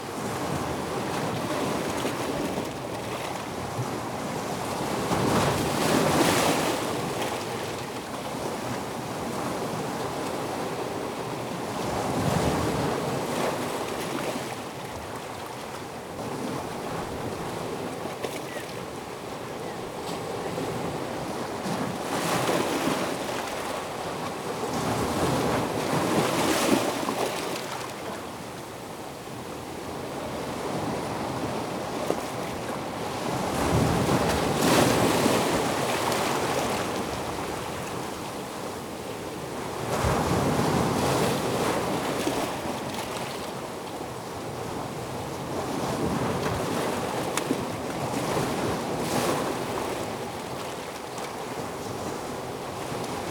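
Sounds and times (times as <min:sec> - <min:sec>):
sea on rocks: 0:00.1 - 0:53.2.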